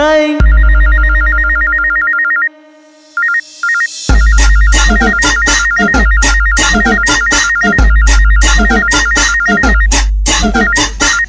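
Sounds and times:
mobile phone ringtone with electronic melody: 0:00.4 - 0:02.6, 0:03.2 - 0:11.2
loud dance track with heavy punchy bass beat and busy percussion: 0:04.1 - 0:11.2.

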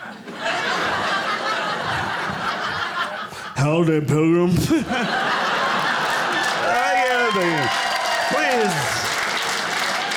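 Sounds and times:
laughter: 0:00.0 - 0:03.8, 0:04.4 - 0:07.7
speech: 0:03.6 - 0:05.2, 0:07.3 - 0:09.0
audience applause: 0:05.5 - 0:10.1.

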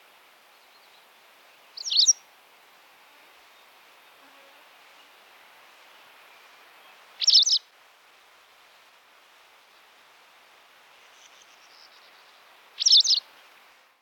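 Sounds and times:
white wagtail chirping: 0:01.8 - 0:02.2, 0:07.2 - 0:07.6, 0:12.8 - 0:13.2.

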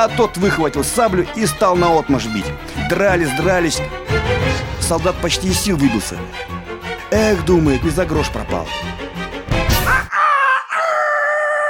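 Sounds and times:
speech: 0:00.0 - 0:08.9
roosters crowing: 0:10.0 - 0:11.6.

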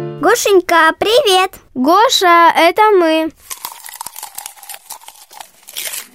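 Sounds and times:
speech: 0:00.3 - 0:03.6
bookworm crunching and chewing paper: 0:03.3 - 0:06.1.

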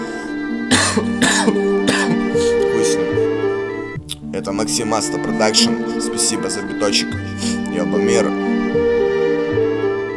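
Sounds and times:
music: 0:00.0 - 0:10.1
person coughing: 0:00.7 - 0:03.0
speech: 0:01.0 - 0:03.3, 0:04.4 - 0:08.9.

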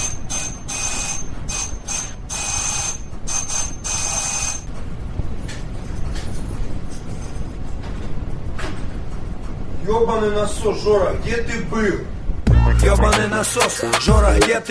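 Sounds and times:
electric doorbell buzzing: 0:00.0 - 0:04.7
speech: 0:09.9 - 0:12.1, 0:12.8 - 0:14.6.

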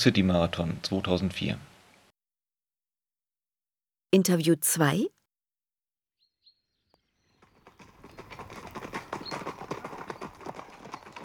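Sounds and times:
speech: 0:00.0 - 0:01.7, 0:04.1 - 0:05.2
horse hooves clip-clopping: 0:07.3 - 0:11.2.

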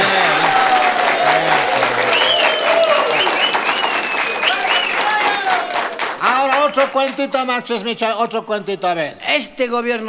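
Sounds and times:
voices calling out and cheering: 0:00.0 - 0:07.0
live audience applause: 0:00.0 - 0:07.2
speech: 0:06.8 - 0:10.0.

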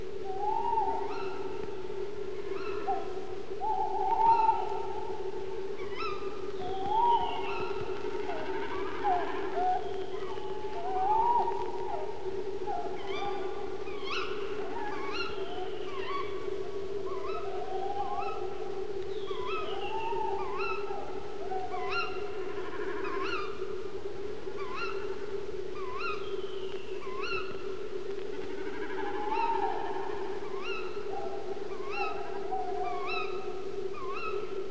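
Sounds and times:
male tawny owl wavering hoots: 0:00.1 - 0:34.6.

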